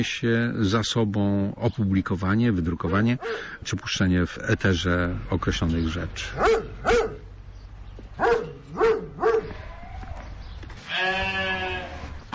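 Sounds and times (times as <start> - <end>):
speech: 0.0 - 7.1
East Friesian and Romanov sheep bleating outdoors in a paddock: 9.5 - 12.2.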